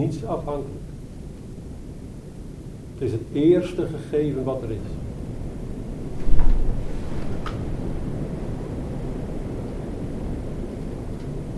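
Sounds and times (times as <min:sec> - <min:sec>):
speech: 0:00.0 - 0:01.0, 0:03.0 - 0:05.0
steady rumbling wind: 0:05.0 - 0:11.0.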